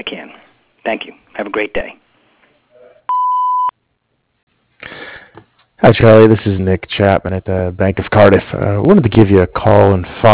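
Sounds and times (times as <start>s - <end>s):
speech: 0.8s - 2.0s, 5.8s - 10.3s
voicemail recording electronic beep: 3.1s - 3.7s.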